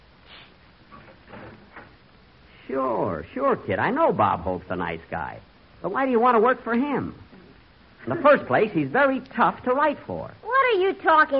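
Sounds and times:
door opening with soft scraping and clicking: 0.9 - 2.0
speech: 2.7 - 7.2, 8.0 - 11.3.

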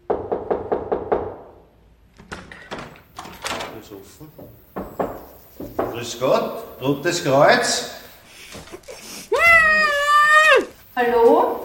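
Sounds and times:
quick knocks on a door: 0.0 - 1.6, 4.4 - 6.3
front door opening with clunks and rattles: 0.1 - 10.0
speech: 3.9 - 4.7, 5.6 - 8.0, 11.0 - 11.6
laughter: 7.7 - 10.7.

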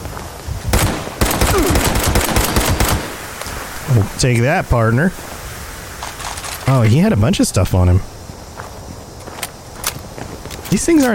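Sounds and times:
rapid gunfire from enemies in a video game: 0.7 - 3.3
speech: 3.9 - 5.3, 6.7 - 8.1, 10.7 - 11.1.

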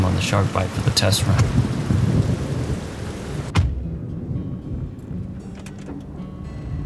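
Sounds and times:
heavy rain: 0.0 - 5.4
speech: 0.2 - 1.7
low rumbling: 1.2 - 6.8.

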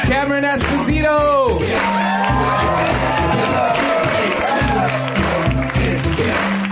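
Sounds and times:
thumping music beat: 0.0 - 6.6
speech: 0.1 - 2.1
live theater audience whoops and shouts: 1.6 - 5.8
live theater audience steady clapping: 1.6 - 6.7.

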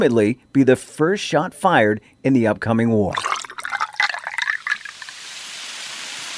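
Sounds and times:
speech: 0.0 - 3.4
soda water pouring into a medicinal elixir: 3.1 - 6.3
soft steady hiss of carbonation: 3.2 - 6.3.

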